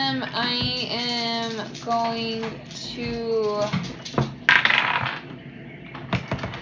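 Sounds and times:
speech: 0:00.2 - 0:03.9
plastic d20 dice rolling during a tabletop role-playing game: 0:04.2 - 0:05.3.

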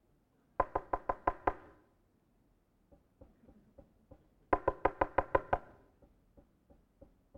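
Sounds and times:
firm knocking on a door: 0:00.6 - 0:01.8, 0:03.0 - 0:07.3.

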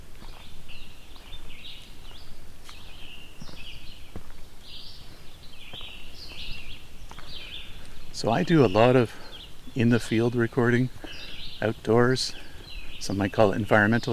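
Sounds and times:
chorus of wild birds singing outdoors on a summer day: 0:00.0 - 0:14.1
constant outdoor noise: 0:00.0 - 0:14.1
speech: 0:08.2 - 0:09.2, 0:09.8 - 0:12.4, 0:13.0 - 0:14.1.

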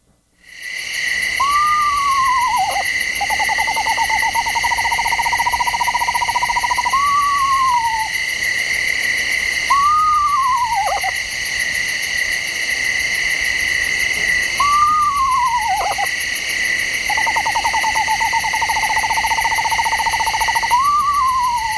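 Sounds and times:
night insects chorus: 0:00.4 - 0:21.7
Eastern screech owl whinnies and monotone trills: 0:01.4 - 0:08.1, 0:09.7 - 0:11.1, 0:14.6 - 0:16.1, 0:17.1 - 0:21.7.

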